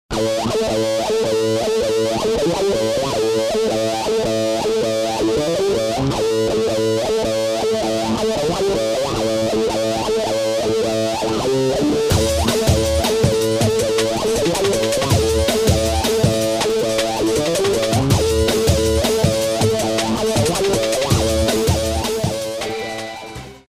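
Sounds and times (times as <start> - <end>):
wild guitar playing: 0.1 - 23.6.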